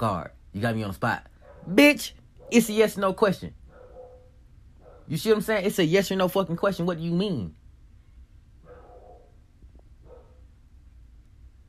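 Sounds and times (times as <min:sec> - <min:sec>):
speech: 0:00.0 - 0:03.6, 0:05.1 - 0:07.6
dog barks from downstairs: 0:01.3 - 0:01.8, 0:03.7 - 0:05.1, 0:08.6 - 0:09.4, 0:10.0 - 0:10.5.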